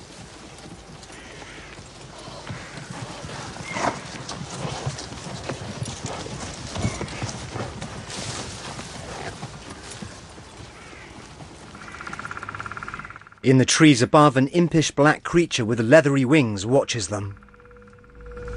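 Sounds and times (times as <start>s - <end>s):
horses' hooves clip-clopping as riders ride through woods: 0.0s - 13.3s
speech: 13.5s - 17.5s.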